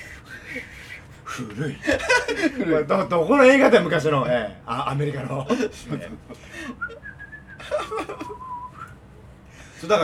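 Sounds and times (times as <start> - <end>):
speech: 0.5 - 0.7, 1.4 - 7.0, 9.8 - 10.0
laughter: 1.5 - 2.8, 5.4 - 7.0, 7.6 - 8.5
person whistling a short wavering melody: 6.8 - 7.6, 8.3 - 9.0.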